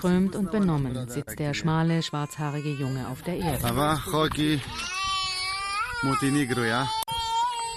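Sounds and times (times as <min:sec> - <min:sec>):
speech: 0:00.0 - 0:05.0, 0:06.0 - 0:07.1
infant crying in long high strained wails near Klobuk at Bosnia-Montenegro border: 0:02.1 - 0:07.7.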